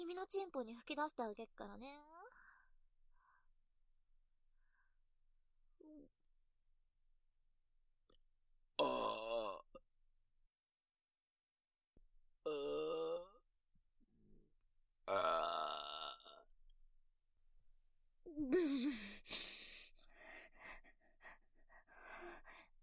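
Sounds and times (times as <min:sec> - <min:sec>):
speech: 0:00.1 - 0:02.3, 0:05.8 - 0:06.2, 0:15.1 - 0:15.4
loud deep throaty burps: 0:08.8 - 0:09.8, 0:12.5 - 0:13.4, 0:15.1 - 0:16.4
faint breathing: 0:18.8 - 0:22.8.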